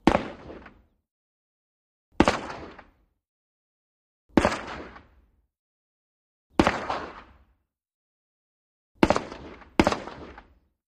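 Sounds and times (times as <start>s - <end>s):
AK47 rifle single shots: 0.0s - 0.8s, 2.2s - 2.9s, 6.6s - 7.3s, 9.0s - 10.6s.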